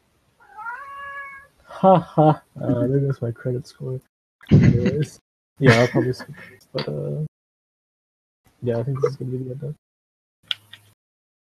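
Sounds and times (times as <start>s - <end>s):
cat meowing: 0.4s - 1.5s
laughter: 1.8s - 3.4s, 4.5s - 7.0s
speech: 1.8s - 7.3s, 8.6s - 9.8s.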